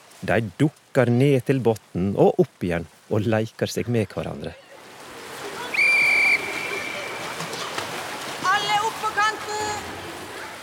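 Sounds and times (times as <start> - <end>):
splashing water in a pool: 0.0 - 10.6
speech: 0.2 - 4.6
pool noise: 4.4 - 10.6
faint high-pitched shouts: 5.5 - 7.8
whistle blast by a swimming teacher during a school swimming lesson: 5.7 - 7.2.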